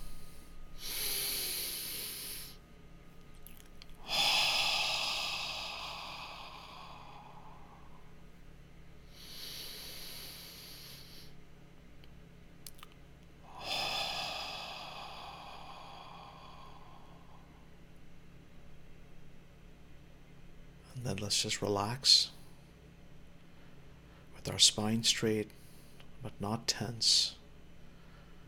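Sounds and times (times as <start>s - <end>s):
person taking deep breaths during a mindfulness practice: 0.0s - 2.6s, 4.0s - 8.3s, 9.0s - 11.4s, 13.4s - 18.0s, 27.8s - 28.4s
speech: 21.0s - 22.4s, 24.4s - 25.6s, 26.2s - 27.4s.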